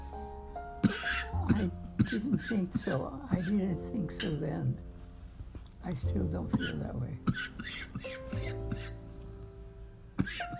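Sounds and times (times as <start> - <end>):
short hoarse coughs: 0.8 - 3.0, 6.6 - 9.0, 10.2 - 10.5
speech: 0.8 - 4.9, 5.8 - 8.6.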